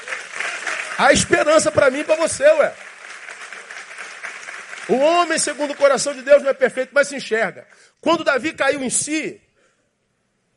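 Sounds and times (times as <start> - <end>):
audience applause: 0.0 - 6.6
speech: 1.0 - 2.9, 4.9 - 9.4.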